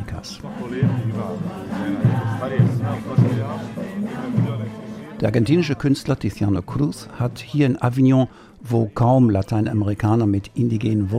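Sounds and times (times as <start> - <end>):
speech: 0.2 - 4.5, 5.2 - 11.1
outdoor crowd murmuring in a street near the railway station in Avignon: 0.4 - 5.8.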